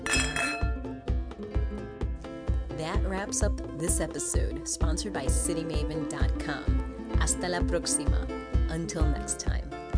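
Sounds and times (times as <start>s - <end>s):
glasses clinking together in a toast: 0.0s - 1.0s
speech: 2.8s - 9.8s.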